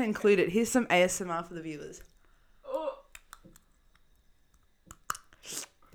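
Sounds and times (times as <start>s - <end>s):
speech: 0.0s - 2.1s, 5.4s - 5.7s
mouth slurping and sucking while removing a dental aligner: 4.9s - 5.9s.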